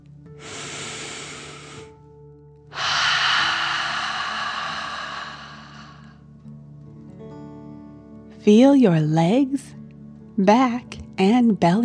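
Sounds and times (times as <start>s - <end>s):
deep breath in: 0.4s - 2.0s, 2.7s - 6.2s
exhale through the mouth: 0.4s - 2.0s, 2.7s - 6.2s
speech: 8.4s - 9.8s, 10.4s - 11.8s.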